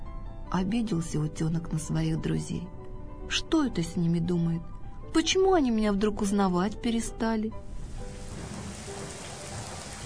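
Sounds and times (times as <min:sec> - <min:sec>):
speech: 0:00.5 - 0:07.7
steady warm rain: 0:07.7 - 0:10.0.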